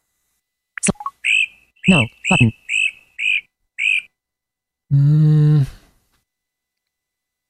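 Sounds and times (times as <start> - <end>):
great crested flycatcher giving rising whistled calls: 1.2 - 4.1
speech: 1.8 - 2.8, 4.9 - 5.8.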